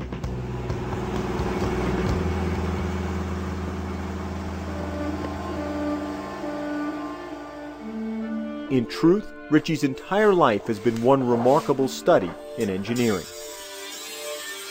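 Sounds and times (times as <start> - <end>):
car engine idling: 0.0 - 8.6
speech: 8.7 - 13.4.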